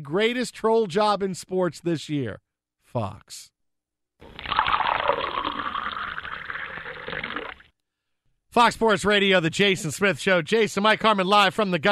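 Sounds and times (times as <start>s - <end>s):
speech: 0.0s - 3.5s, 8.5s - 11.9s
cola pouring: 4.2s - 7.7s.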